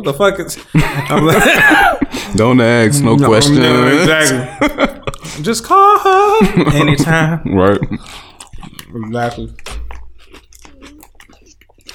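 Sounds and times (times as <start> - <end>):
speech: 0.0 - 8.2, 8.9 - 9.7
laughter: 0.7 - 2.5, 3.4 - 8.3
wet crunchy chewing of food: 8.0 - 11.9.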